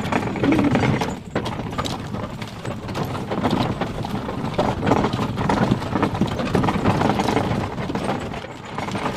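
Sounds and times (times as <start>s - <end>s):
free-wheeling wagon on wheels rumbling: 0.0s - 9.1s
hooves of two horses clip-clopping pulling a wagon: 0.0s - 9.1s.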